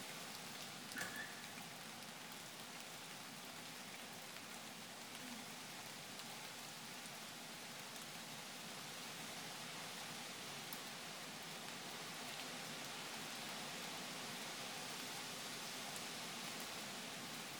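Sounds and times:
wind and rain: 0.0s - 17.5s.

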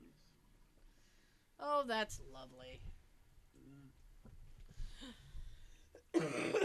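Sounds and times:
speech: 1.6s - 3.0s, 6.2s - 6.6s
harsh cough: 6.1s - 6.6s.

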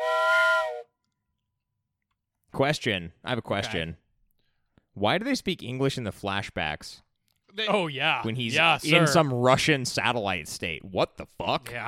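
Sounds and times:
loud shrill whistle blast: 0.0s - 1.0s
speech: 2.6s - 4.0s, 5.0s - 11.8s.

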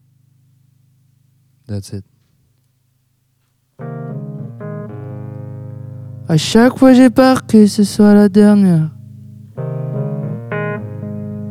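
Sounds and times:
speech: 1.7s - 2.2s, 6.3s - 9.0s
piano chords: 3.8s - 11.4s.

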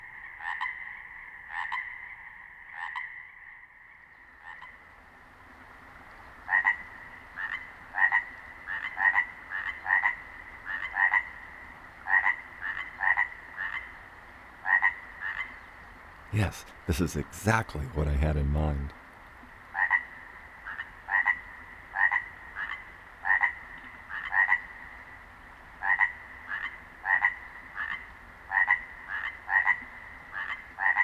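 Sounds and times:
two frogs trading throaty croaks: 0.0s - 4.8s, 6.5s - 14.0s, 14.6s - 15.7s, 19.7s - 25.0s, 25.8s - 31.0s
soft running-water hiss of a brook: 4.0s - 31.0s
speech: 16.4s - 19.0s.

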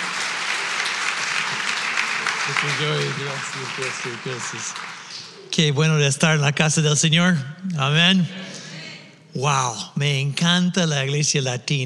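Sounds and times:
crowd applauding: 0.0s - 5.8s
speech: 2.5s - 8.5s, 9.4s - 11.8s.

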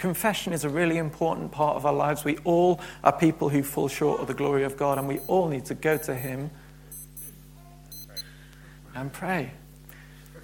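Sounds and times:
speech: 0.0s - 6.6s, 9.0s - 9.6s
low steady hum: 0.0s - 10.4s
wristwatch alarm beeping: 4.9s - 8.3s.

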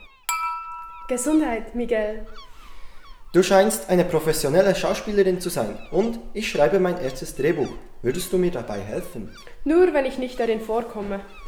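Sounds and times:
glasses clinking in a toast: 0.2s - 3.8s
speech: 1.1s - 2.5s, 3.3s - 11.4s.

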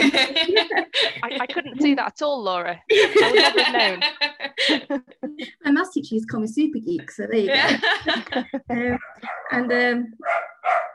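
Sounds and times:
laughter: 0.0s - 1.8s, 2.9s - 5.5s, 7.5s - 9.6s
speech: 1.9s - 10.9s
dog barking and yipping: 9.0s - 9.6s, 10.2s - 10.9s.

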